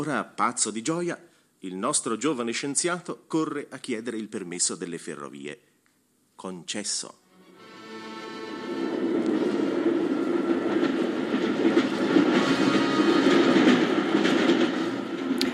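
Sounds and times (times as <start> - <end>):
speech: 0.0 - 5.7, 6.4 - 7.2
train rolling on rails: 7.9 - 15.5.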